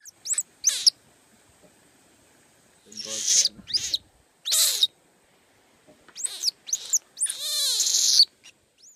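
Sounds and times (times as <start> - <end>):
young animal's frightened alarm calls: 0.0 - 1.0, 2.9 - 5.0, 6.2 - 8.9.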